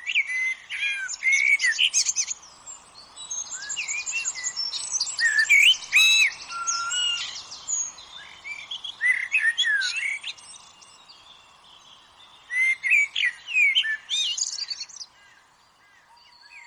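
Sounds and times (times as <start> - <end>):
great tit songs: 0.4 - 16.6.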